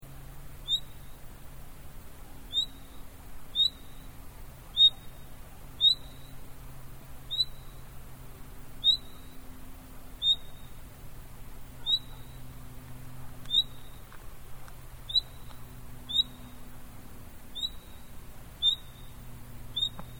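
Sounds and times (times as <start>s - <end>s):
low background hum: 0.0s - 20.1s
Common nightingale Luscinia megarhynchos rising whistle call: 0.6s - 1.1s, 2.5s - 4.1s, 5.8s - 6.3s, 7.3s - 7.8s, 8.8s - 9.3s, 10.2s - 10.7s, 11.8s - 12.3s, 13.5s - 14.0s, 15.1s - 15.4s, 16.1s - 16.5s, 17.5s - 18.0s, 18.6s - 19.1s, 19.7s - 20.1s.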